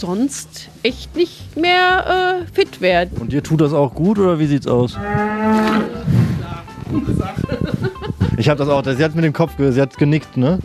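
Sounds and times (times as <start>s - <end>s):
speech: 0.0s - 6.2s, 6.9s - 10.6s
cow mooing on a farm: 4.9s - 6.1s
laughter: 6.8s - 8.6s.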